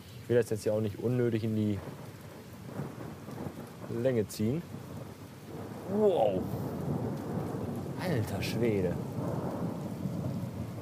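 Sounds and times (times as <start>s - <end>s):
rain hissing: 0.0s - 10.8s
speech: 0.3s - 2.2s, 3.9s - 4.8s, 5.9s - 6.7s, 8.0s - 9.4s
thunder rumbling during a thunderstorm: 1.7s - 10.8s.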